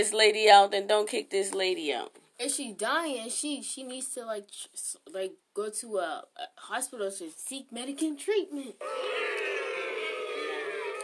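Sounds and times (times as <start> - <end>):
speech: 0.0 - 9.6
audience booing in disagreement: 8.8 - 11.0.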